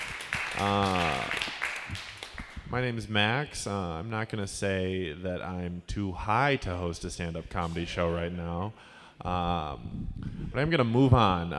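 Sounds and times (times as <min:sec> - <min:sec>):
audience applause: 0:00.0 - 0:02.6
speech: 0:00.6 - 0:01.4, 0:02.7 - 0:11.5
person whooping: 0:00.6 - 0:01.5.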